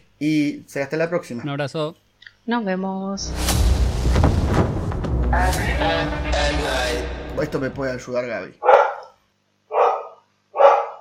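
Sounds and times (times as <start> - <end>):
speech: 0.2 - 4.6, 5.3 - 8.7
neighbor's dog barking: 8.6 - 9.1, 9.7 - 10.9.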